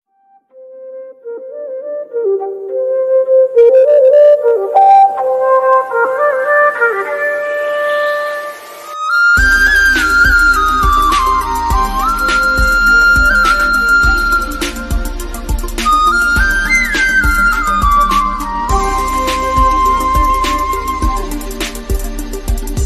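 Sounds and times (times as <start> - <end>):
flute: 0.4 - 22.8
remix ringtone beats: 9.4 - 22.8.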